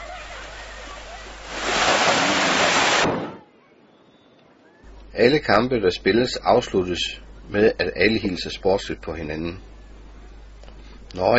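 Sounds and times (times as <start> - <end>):
girls splashing in seawater at a beach handball tournament: 0.0 - 3.4
beach noise: 0.0 - 11.3
speech: 5.2 - 9.7, 11.1 - 11.3.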